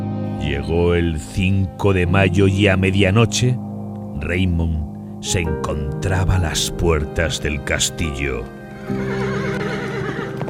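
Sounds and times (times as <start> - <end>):
speech: 0.4 - 9.3
horse neighing in a cave: 8.8 - 10.4
horse hooves clip-clopping in a cave: 9.1 - 10.4.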